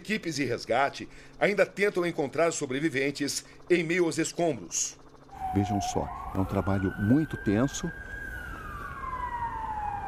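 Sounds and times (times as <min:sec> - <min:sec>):
speech: 0:00.0 - 0:08.1
ambulance siren wailing at rescue site: 0:05.1 - 0:10.0.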